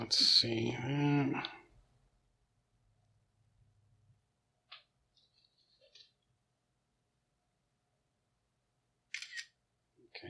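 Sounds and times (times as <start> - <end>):
speech: 0.0 - 1.6
camera shutter click taking a picture: 9.2 - 9.6.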